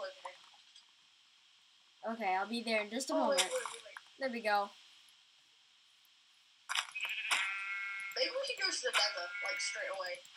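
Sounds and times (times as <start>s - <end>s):
speech: 2.1s - 4.8s, 8.7s - 10.3s
sheep bleating in a video game: 7.3s - 8.2s, 9.1s - 9.9s.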